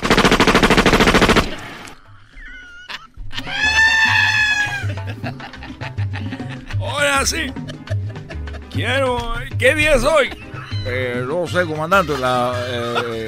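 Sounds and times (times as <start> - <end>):
rapid gunfire: 0.0 - 1.9
laughter: 2.2 - 9.2, 10.2 - 13.2
speech: 7.2 - 7.7, 8.8 - 13.2.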